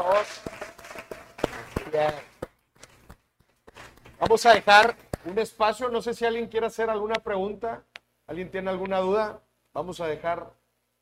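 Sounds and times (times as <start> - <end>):
speech: 0.0 - 0.6, 1.9 - 2.3, 4.2 - 10.6
audience applause: 0.0 - 2.4.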